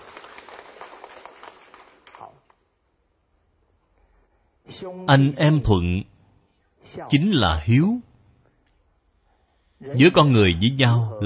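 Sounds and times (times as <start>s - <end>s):
audience applause: 0.0s - 2.5s
speech: 4.7s - 6.1s, 6.8s - 8.1s, 9.8s - 11.2s.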